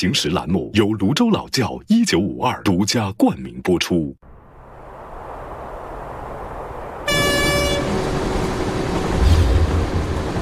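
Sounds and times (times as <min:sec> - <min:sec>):
speech: 0:00.0 - 0:04.3
passenger train passing with roar and rumble: 0:04.3 - 0:10.4
train horn blast: 0:07.0 - 0:09.8.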